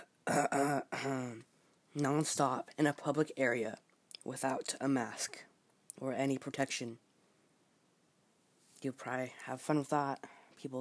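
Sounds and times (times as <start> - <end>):
person giving forced throaty coughs: 0.0 - 1.4
speech: 2.0 - 7.0, 8.8 - 10.7.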